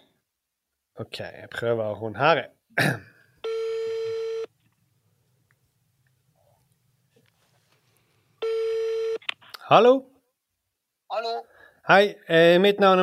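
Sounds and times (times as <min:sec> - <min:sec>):
speech: 0:01.0 - 0:03.1, 0:09.7 - 0:10.1, 0:11.2 - 0:13.0
outgoing phone call buzzing ringing tone: 0:03.4 - 0:04.5, 0:08.4 - 0:09.2.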